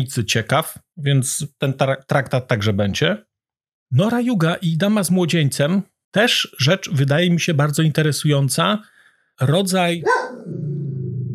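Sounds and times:
speech: 0.0 - 3.3, 3.9 - 10.8
dog barking and growling: 10.0 - 11.3.

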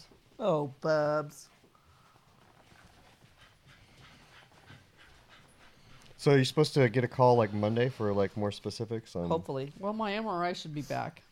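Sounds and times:
speech: 0.4 - 1.5, 6.2 - 11.3
dog panting: 1.8 - 8.2.

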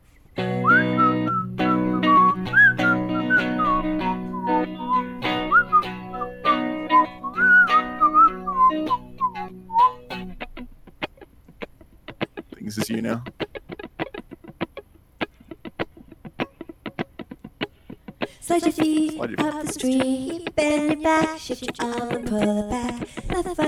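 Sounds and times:
clear whistled melody: 0.4 - 10.3
speech: 13.0 - 13.4, 18.5 - 23.6.

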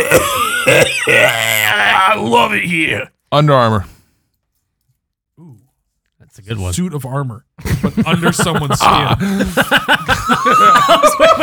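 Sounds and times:
throat-clearing coughs: 0.0 - 1.5
speech: 0.0 - 4.0, 6.4 - 11.4
laughter: 7.6 - 11.4.

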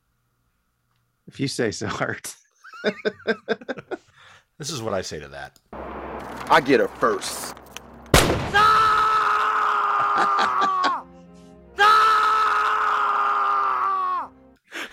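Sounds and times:
speech: 1.3 - 4.0, 4.6 - 7.6
laughter: 2.7 - 4.1
man screaming: 8.5 - 11.1, 11.8 - 14.4.

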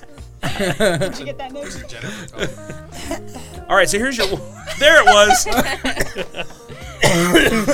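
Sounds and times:
laughter: 0.4 - 3.4, 4.2 - 7.7
speech: 0.6 - 7.7
person coughing with a rough rasping throaty quality: 4.2 - 4.6, 5.5 - 6.2, 6.8 - 7.7.

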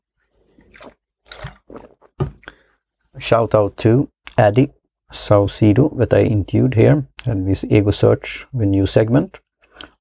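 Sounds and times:
sipping yerba mate: 0.3 - 2.7
speech: 3.2 - 9.9.

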